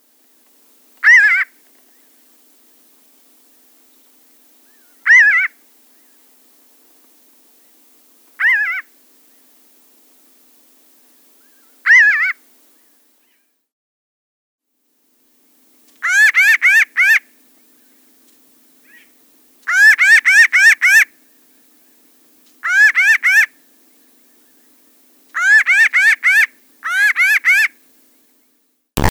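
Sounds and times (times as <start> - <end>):
Pinyon Jay calling: 1.0 - 1.6, 4.6 - 5.6, 8.4 - 8.9, 16.0 - 17.3, 18.8 - 21.1, 22.6 - 23.6, 25.4 - 27.8.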